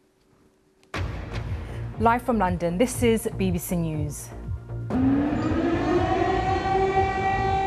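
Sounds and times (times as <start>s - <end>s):
speech: 2.0s - 4.4s
air raid siren wailing: 4.9s - 7.6s.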